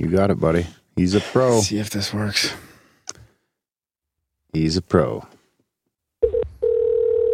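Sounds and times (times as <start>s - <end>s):
speech: 0.0s - 2.7s, 4.5s - 5.4s
phone dial tone while adding a caller to a group call: 6.2s - 7.3s.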